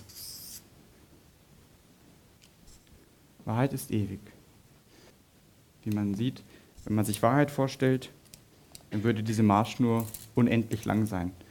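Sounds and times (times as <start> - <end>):
handwriting scratches as points are written down: 0.0 - 0.6
speech: 3.4 - 4.4, 5.8 - 8.2, 8.9 - 11.4.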